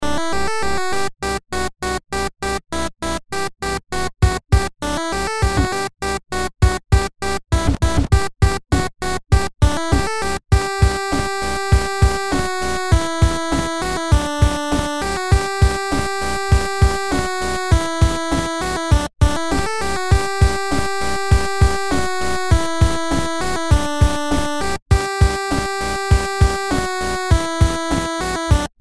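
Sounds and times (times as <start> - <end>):
8-bit ringtone: 0.0 - 28.7.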